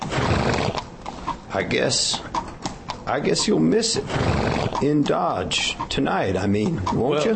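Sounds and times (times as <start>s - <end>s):
tired old mare whinnying: 0.0s - 1.0s, 3.9s - 4.9s
old mare's hooves clip-clopping while being ridden on a trail: 0.0s - 7.3s
speech: 1.6s - 2.3s, 3.1s - 7.3s.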